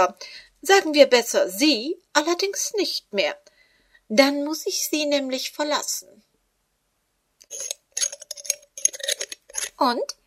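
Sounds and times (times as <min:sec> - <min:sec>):
speech: 0:00.0 - 0:03.5, 0:04.1 - 0:06.3, 0:07.5 - 0:07.8, 0:09.8 - 0:10.2
glass bottle of schnapps being handled, clinking and rattling: 0:07.5 - 0:09.7.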